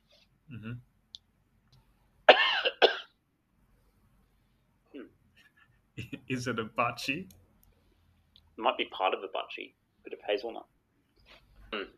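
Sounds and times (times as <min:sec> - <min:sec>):
speech: 0:00.5 - 0:00.9, 0:06.3 - 0:07.4, 0:08.6 - 0:10.7, 0:11.7 - 0:11.9
harsh coughing from something stuck in the throat: 0:02.3 - 0:03.2.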